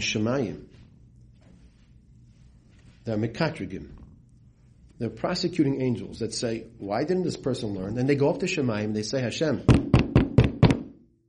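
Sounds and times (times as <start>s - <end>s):
speech: 0.0s - 0.7s, 3.1s - 4.0s, 5.0s - 9.9s
firm knocks on a wooden door: 9.7s - 10.9s.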